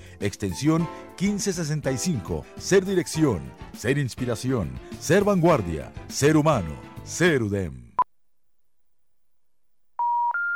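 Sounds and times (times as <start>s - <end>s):
speech: 0.2s - 7.8s
electronic touch-tone telephone dialing tones: 10.0s - 10.5s.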